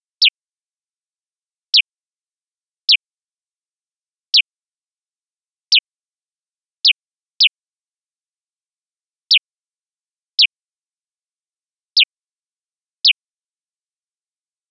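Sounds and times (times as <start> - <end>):
sparrow chirping: 0.0 - 0.4, 2.8 - 3.0, 4.3 - 4.5, 6.8 - 7.6, 11.9 - 12.1, 13.0 - 13.2.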